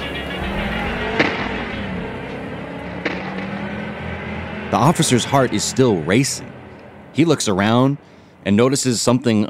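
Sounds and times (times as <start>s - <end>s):
car engine roaring as the vehicle speeds away: 0.0s - 9.4s
sharp thuds: 0.9s - 1.9s, 2.9s - 3.8s
speech: 4.7s - 6.6s, 7.2s - 9.4s.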